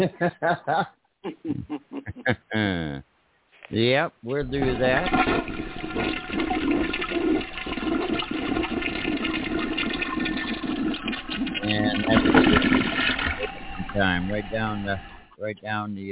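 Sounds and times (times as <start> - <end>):
laughter: 0.0 - 2.9, 13.2 - 15.6
speech: 0.0 - 3.1, 3.7 - 7.0, 14.0 - 16.0
toilet flushing: 4.4 - 15.4.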